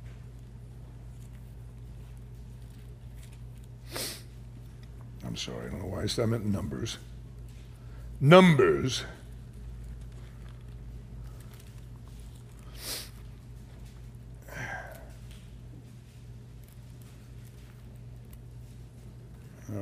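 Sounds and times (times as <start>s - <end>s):
steady low electrical hum: 0.0s - 19.8s
sniffles from a stuffy nose with a head cold: 3.8s - 4.3s, 12.6s - 13.2s
speech: 5.3s - 7.1s, 8.2s - 9.2s.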